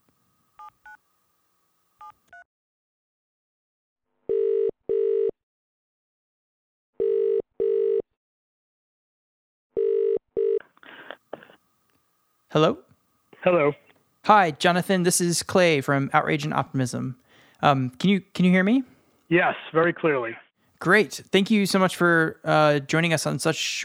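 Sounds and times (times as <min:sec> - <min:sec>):
double-pulse telephone ringing tone: 0:04.3 - 0:05.3, 0:07.0 - 0:08.0, 0:09.8 - 0:10.6
speech: 0:12.5 - 0:23.8.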